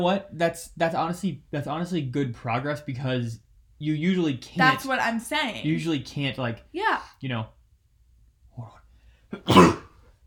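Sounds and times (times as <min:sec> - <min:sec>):
speech: 0:00.0 - 0:07.6, 0:08.6 - 0:09.8
person sneezing: 0:09.4 - 0:10.0.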